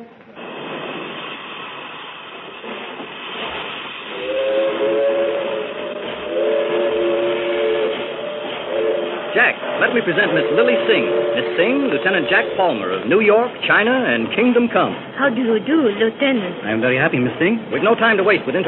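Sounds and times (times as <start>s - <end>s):
steam train hissing at a railroad station: 0.0s - 18.6s
loud wavering steam whistle blasts: 4.0s - 12.9s
speech: 10.0s - 18.6s.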